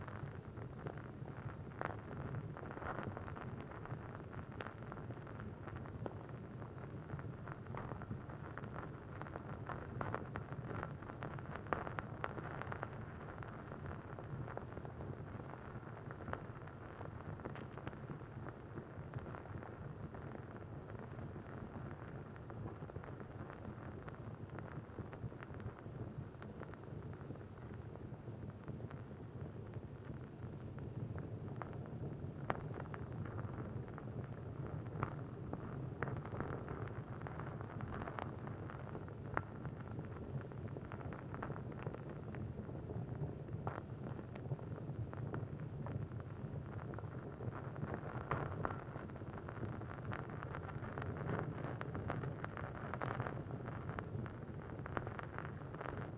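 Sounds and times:
medium oil lamp burning: 0:00.1 - 0:56.1.

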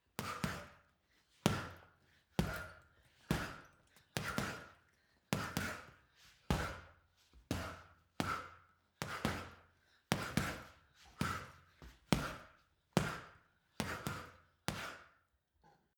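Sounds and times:
boxing punching bag being punched: 0:00.2 - 0:00.8, 0:01.5 - 0:01.8, 0:02.4 - 0:04.8, 0:05.4 - 0:06.9, 0:07.5 - 0:15.0.

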